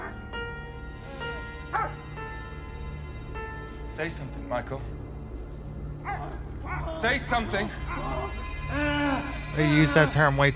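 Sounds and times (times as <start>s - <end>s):
dog barking: 1.7s - 2.0s, 6.0s - 7.1s
speech: 4.0s - 5.0s, 7.0s - 10.5s.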